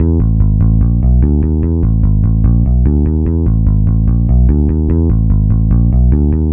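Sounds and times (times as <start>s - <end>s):
electric bass: 0.0s - 6.5s.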